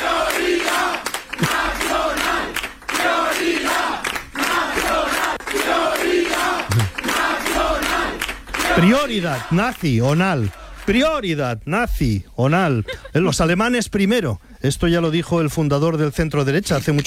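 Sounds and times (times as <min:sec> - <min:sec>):
political party supporters chanting a slogan in unison on election night: 0:00.0 - 0:10.9
laughter: 0:01.3 - 0:01.9, 0:06.7 - 0:07.0, 0:12.7 - 0:13.3
speech: 0:08.8 - 0:17.0.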